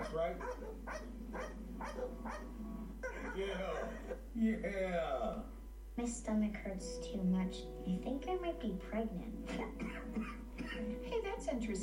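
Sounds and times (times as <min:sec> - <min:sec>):
dogs barking: 0:00.0 - 0:04.3
steady low hum: 0:00.0 - 0:11.8
speech: 0:00.1 - 0:10.4, 0:11.4 - 0:11.8.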